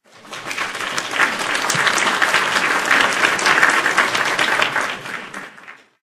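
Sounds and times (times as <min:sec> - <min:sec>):
applause: 0:00.0 - 0:06.0.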